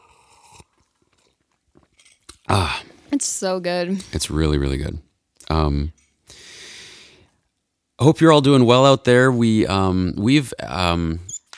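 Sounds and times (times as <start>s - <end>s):
person slurping coffee: 0.0s - 3.1s
person swallowing coffee: 1.8s - 3.0s
speech: 2.5s - 6.5s, 8.0s - 11.3s.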